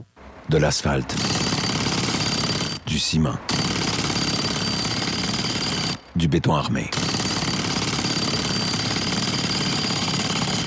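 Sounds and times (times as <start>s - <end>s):
loud jackhammer pounding: 0.2s - 6.2s, 6.9s - 10.6s
speech: 0.5s - 1.6s, 3.0s - 4.0s, 6.2s - 7.1s.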